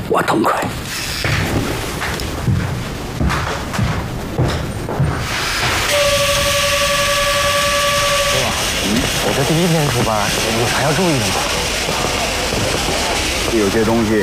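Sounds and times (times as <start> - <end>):
people talking: 0.1 - 0.8, 8.3 - 14.1
train rumbling along with hissing: 0.6 - 14.1
two-toned train whistle: 5.4 - 9.7.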